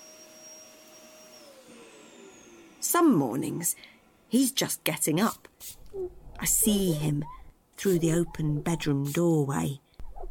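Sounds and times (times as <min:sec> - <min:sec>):
vacuum cleaner motor roaring with a high thin whine: 0:00.0 - 0:04.3
speech: 0:02.8 - 0:09.8.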